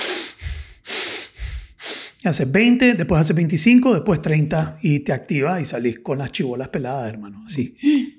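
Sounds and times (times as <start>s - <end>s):
rapid forceful hyperventilation breathing through the nose as a pre-gym activation routine: 0.0s - 2.2s
speech: 2.2s - 8.1s.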